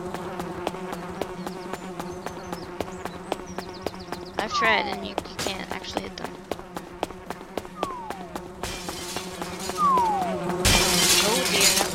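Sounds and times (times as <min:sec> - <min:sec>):
electronic bee buzz in a video game: 0:00.0 - 0:11.9
speech: 0:04.5 - 0:06.2
short chirping video game blips: 0:07.8 - 0:08.4, 0:09.8 - 0:10.5.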